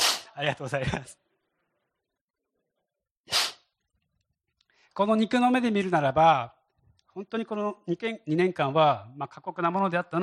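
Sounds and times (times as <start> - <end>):
person sneezing: 0.0 - 0.4, 3.3 - 3.7
speech: 0.4 - 1.2, 5.0 - 6.6, 7.2 - 10.2
laughter: 0.4 - 1.3.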